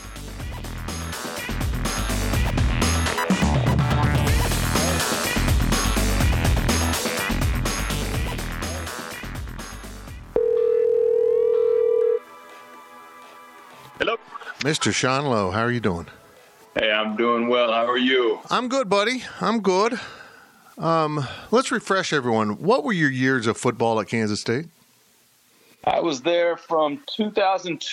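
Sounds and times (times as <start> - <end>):
dense busy music: 0.1 - 10.3
steady telephone tone of a call placed to Dallas: 10.4 - 12.3
speech: 14.7 - 16.2, 16.8 - 20.2, 20.8 - 24.8, 25.8 - 27.9.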